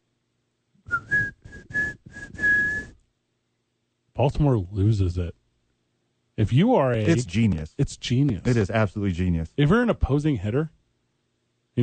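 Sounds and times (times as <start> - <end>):
person whistling a short tune imitating a character's whistle: 0.9 - 3.0
speech: 4.2 - 5.4, 6.4 - 10.8.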